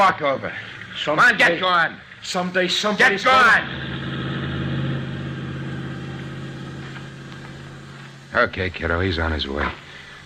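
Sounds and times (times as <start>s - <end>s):
speech: 0.0s - 4.0s, 8.3s - 9.8s
motor vehicle engine running with a low drone and buzzing hum: 3.4s - 8.6s.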